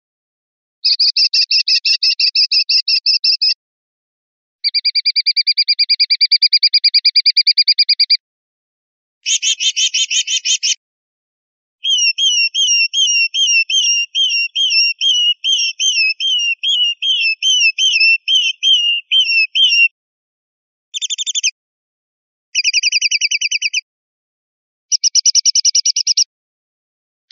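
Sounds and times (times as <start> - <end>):
sparrowhawk calls: 0.8 - 3.6, 4.6 - 8.2, 9.3 - 10.8, 11.8 - 19.9, 21.0 - 21.5, 22.6 - 23.8, 24.9 - 26.3.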